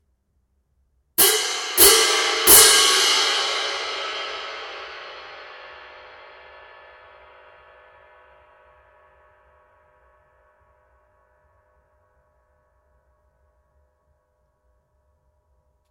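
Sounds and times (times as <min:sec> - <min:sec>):
18in symphonic pair cymbals: 0:01.2 - 0:07.5.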